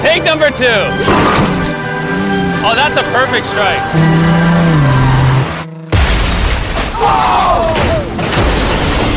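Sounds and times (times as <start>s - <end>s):
speech: 0.2s - 1.8s, 2.6s - 4.5s
car engine revving: 1.0s - 6.3s
car crashing into another car: 5.9s - 9.1s.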